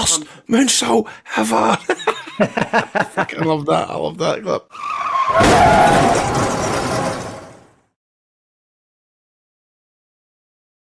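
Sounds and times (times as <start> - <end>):
speech: 0.1 - 6.5
laughter: 1.5 - 3.6
car tire squealing while skidding: 4.7 - 7.6
car crash sound effect: 4.8 - 7.9.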